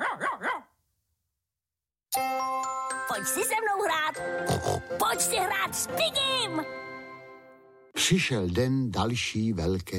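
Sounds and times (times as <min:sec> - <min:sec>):
fox terrier barking: 0:00.0 - 0:00.7
speech: 0:03.2 - 0:06.8, 0:08.0 - 0:09.9.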